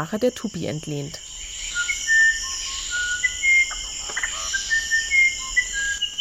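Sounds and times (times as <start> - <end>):
speech: 0.0 - 1.3
steady high insect-like hiss: 0.0 - 6.1
musician wren song, small Amazon songbird: 1.2 - 6.1.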